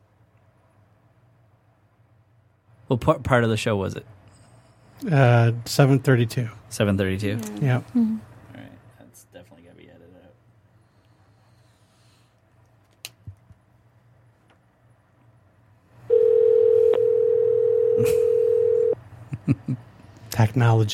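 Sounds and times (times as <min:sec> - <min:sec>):
low noise: 0:00.0 - 0:20.9
speech: 0:02.9 - 0:04.2, 0:05.0 - 0:08.3, 0:20.6 - 0:20.9
telephone dial tone while calling back a caller: 0:16.1 - 0:19.0.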